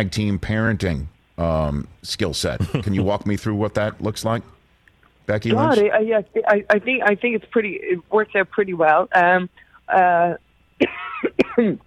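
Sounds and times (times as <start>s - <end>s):
speech: 0.0s - 4.6s, 5.3s - 11.8s
woman clearing her throat: 10.8s - 11.8s.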